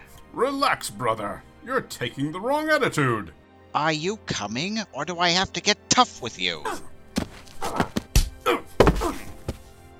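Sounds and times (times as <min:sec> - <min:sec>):
speech: 0:00.4 - 0:06.9
heavy punches landing in a fight: 0:07.2 - 0:09.6.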